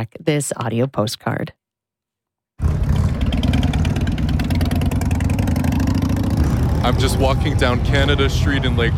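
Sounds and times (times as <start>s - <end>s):
speech: 0.0s - 1.6s, 6.9s - 8.9s
motorcycle engines revving at a stunt show: 2.6s - 8.9s.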